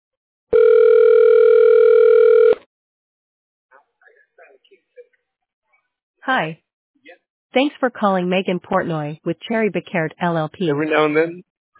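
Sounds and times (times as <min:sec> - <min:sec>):
telephone ringback tone while call forwards: 0:00.6 - 0:02.6
faint speech: 0:03.8 - 0:05.2, 0:10.8 - 0:11.4
speech: 0:06.3 - 0:06.6, 0:07.6 - 0:11.5.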